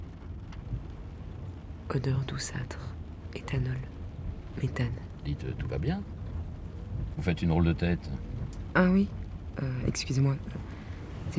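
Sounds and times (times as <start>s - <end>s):
light rain falling: 0.0s - 11.3s
low rumble: 0.0s - 11.3s
faint tapping: 0.1s - 11.3s
speech: 1.9s - 4.0s, 4.6s - 6.2s, 7.2s - 10.7s.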